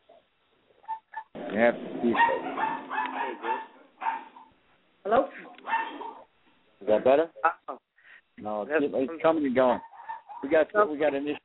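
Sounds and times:
dogs barking and yipping over a phone line: 0.8s - 4.6s, 5.3s - 6.4s, 9.6s - 10.6s
speech: 1.6s - 3.7s, 6.8s - 7.8s, 8.4s - 11.4s.

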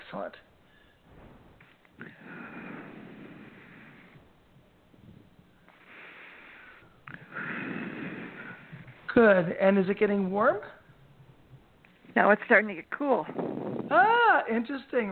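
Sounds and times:
speech: 0.1s - 0.5s, 9.2s - 10.8s, 12.2s - 15.1s
long slow breaths out through the mouth: 0.6s - 9.1s, 13.3s - 13.9s.

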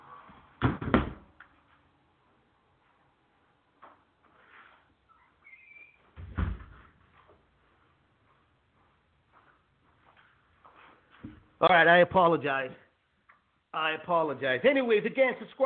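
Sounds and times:
quiet shuffling: 3.8s - 11.6s
door thudding shut: 6.2s - 6.8s
speech: 11.6s - 12.8s, 13.8s - 15.6s.

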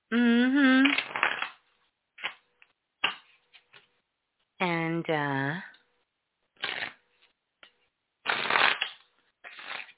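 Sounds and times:
shuffling a deck of cards: 0.8s - 1.6s, 6.6s - 7.0s, 8.3s - 9.9s
speech: 5.1s - 5.7s.

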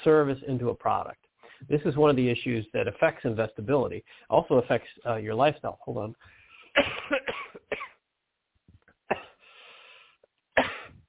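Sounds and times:
speech: 0.0s - 7.4s
person coughing from a tickle in the throat: 6.7s - 8.0s, 9.1s - 9.4s, 10.6s - 11.0s.

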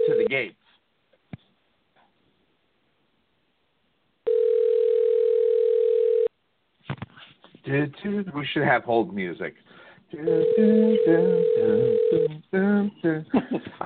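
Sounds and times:
telephone ringback tone on an outgoing call: 0.0s - 0.3s, 4.3s - 6.3s, 10.3s - 12.3s
speech: 0.3s - 0.6s, 7.6s - 13.8s.

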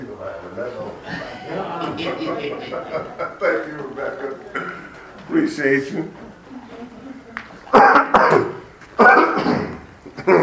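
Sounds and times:
speech: 0.0s - 1.2s, 1.9s - 4.6s, 5.3s - 6.2s
laughter: 0.9s - 5.2s
person clearing their throat: 7.7s - 10.4s.

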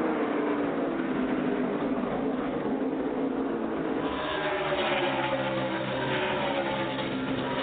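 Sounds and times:
race car engines roaring down the backstraight of a racetrack: 0.0s - 7.6s.

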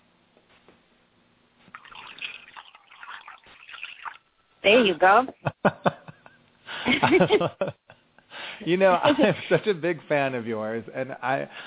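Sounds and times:
herbal tea pouring into a cup: 1.7s - 4.3s
speech: 4.6s - 6.0s, 7.0s - 7.8s, 8.6s - 11.6s
laughter: 5.5s - 8.0s, 9.0s - 9.8s.

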